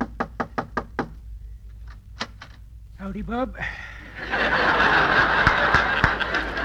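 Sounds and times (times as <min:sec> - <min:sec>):
knocking on a wooden door: 0:00.0 - 0:01.2
speech: 0:03.0 - 0:04.8
laughter: 0:03.9 - 0:06.6.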